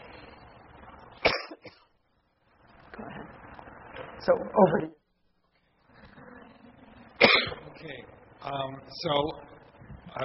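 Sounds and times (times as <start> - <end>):
loud cough: 1.2 - 1.8, 7.2 - 7.7
speech: 4.2 - 5.0, 8.5 - 9.5.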